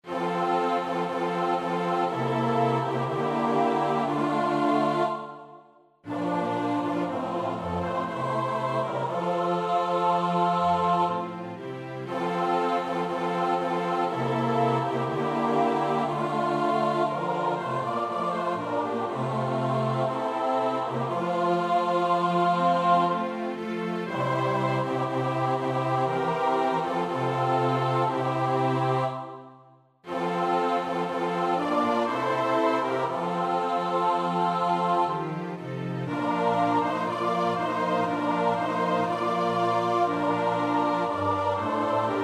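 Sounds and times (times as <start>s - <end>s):
SATB choir part practice singing: 0.0s - 42.2s.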